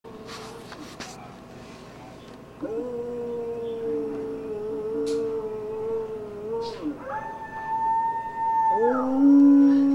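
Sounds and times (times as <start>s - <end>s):
howling: 2.6s - 9.9s.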